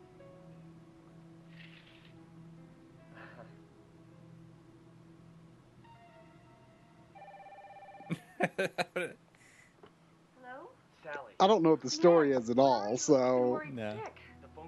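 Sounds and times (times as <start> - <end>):
old-fashioned wired telephone bell ringing: 7.2 - 8.2
laughter: 8.1 - 9.1
speech: 8.4 - 9.2, 11.4 - 14.2.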